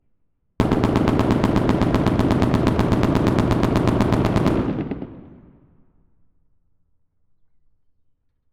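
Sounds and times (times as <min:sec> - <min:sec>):
Browning M2 machine gun burst in a street: 0:00.6 - 0:05.6.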